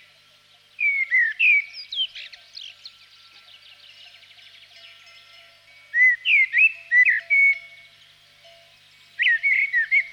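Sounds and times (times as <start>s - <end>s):
common blackbird song of rich rounded whistled notes: 0.7s - 8.0s, 9.0s - 10.1s.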